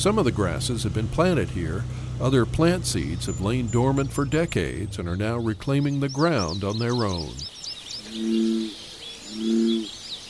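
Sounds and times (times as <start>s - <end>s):
speech: 0.0s - 7.5s, 8.2s - 8.8s
marsh birds chirping: 0.0s - 10.2s.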